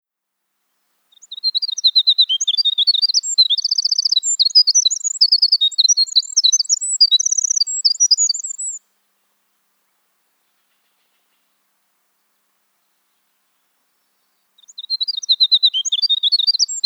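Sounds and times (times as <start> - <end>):
wren song in winter: 1.1 - 8.9, 12.9 - 16.8.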